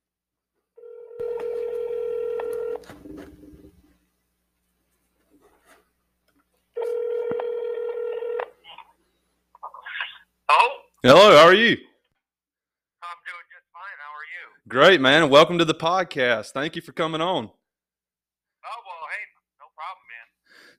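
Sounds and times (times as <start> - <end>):
mobile phone ringback tone buzz: 0.8 - 2.9, 6.8 - 8.6
shuffling: 2.7 - 7.4
speech: 11.0 - 11.9, 14.8 - 17.6.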